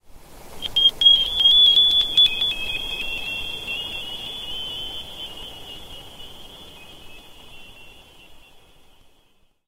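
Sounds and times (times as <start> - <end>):
sonar sweep: 0.6 - 7.4.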